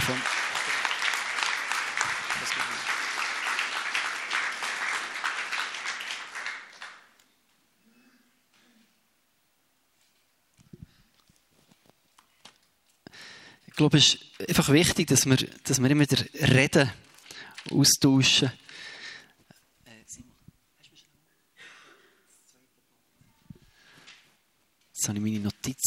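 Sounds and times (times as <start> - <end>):
audience applause: 0.0 - 7.2
speech: 13.8 - 17.0, 17.7 - 18.6.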